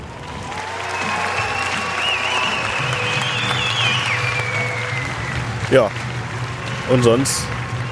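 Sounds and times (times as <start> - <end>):
audience applause from a sizable crowd after a film screening: 0.0 - 7.8
thin whistle-like tone: 1.6 - 5.4
speech: 5.7 - 6.0, 6.9 - 7.6.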